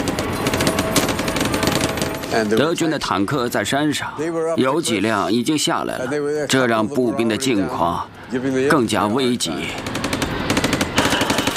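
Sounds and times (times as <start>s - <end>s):
sustained machine-gun fire in a war video game battle at a river crossing: 0.0s - 2.7s, 9.6s - 11.5s
speech: 2.3s - 10.0s.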